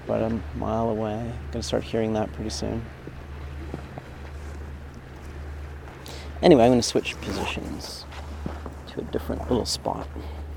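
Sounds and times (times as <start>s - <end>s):
powerboat going by on the water: 0.0s - 10.5s
speech: 0.1s - 3.0s, 6.4s - 8.2s, 9.0s - 10.4s.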